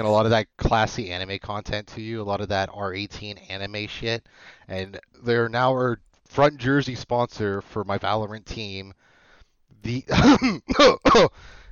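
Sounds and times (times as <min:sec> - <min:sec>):
speech: 0:00.0 - 0:09.1, 0:09.8 - 0:11.6
voiced throaty harsh cough: 0:10.1 - 0:11.4.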